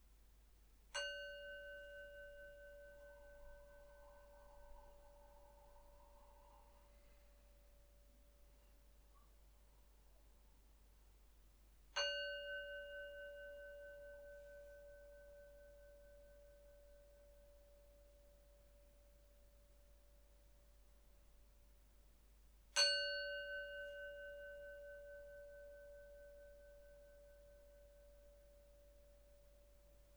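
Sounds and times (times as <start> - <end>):
meditation bell struck for guided meditation: 1.0 - 6.7, 12.0 - 19.8, 22.8 - 30.1.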